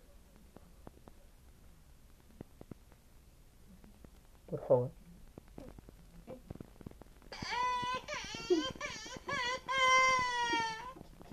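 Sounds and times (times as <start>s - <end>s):
speech: 4.5s - 5.0s
child crying in high-pitched wails: 7.4s - 11.0s.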